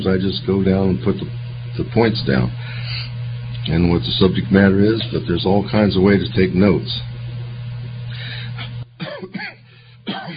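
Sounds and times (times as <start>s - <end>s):
speech: 0.0s - 3.1s, 3.7s - 7.1s
low steady hum: 0.0s - 10.3s
person coughing and clearing their throat: 8.6s - 10.3s.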